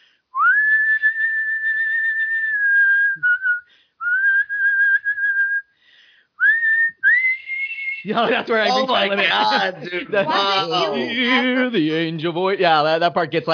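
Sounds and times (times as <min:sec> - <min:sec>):
person whistling the high part of a carol melody: 0:00.3 - 0:05.7, 0:06.4 - 0:08.1
laughter: 0:08.0 - 0:12.2
speech: 0:08.0 - 0:13.5.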